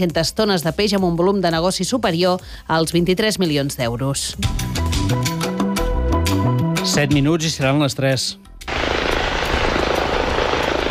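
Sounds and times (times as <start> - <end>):
speech: 0.0 - 5.5, 6.8 - 8.5
helicopter flying over the Gironès county: 8.7 - 10.8.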